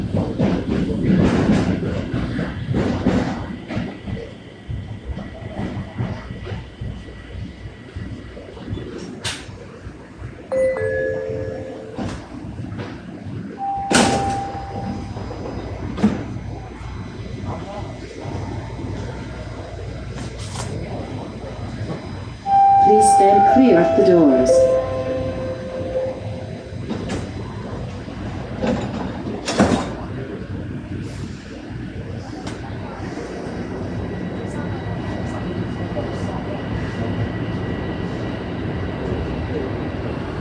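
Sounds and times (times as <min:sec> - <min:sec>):
subway train rumbling and squealing pulling into a station: 0:00.0 - 0:40.4
electronic door chime tones on a subway train: 0:10.5 - 0:12.3, 0:13.6 - 0:15.3, 0:22.5 - 0:26.6.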